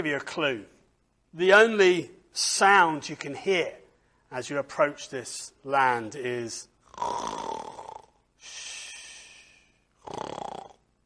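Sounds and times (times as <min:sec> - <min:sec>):
speech: 0:00.0 - 0:07.5
person snoring: 0:06.8 - 0:10.8.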